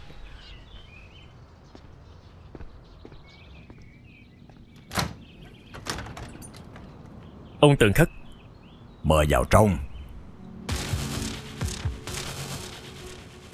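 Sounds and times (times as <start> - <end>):
faint chirps: 0.0 - 13.5
door being opened with latch clicks and clunks: 4.7 - 7.4
speech: 7.6 - 8.2, 9.1 - 9.9.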